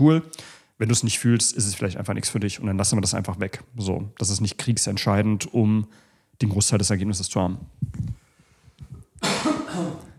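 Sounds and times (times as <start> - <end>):
speech: 0.0 - 8.2
loud harsh cough: 9.2 - 10.1.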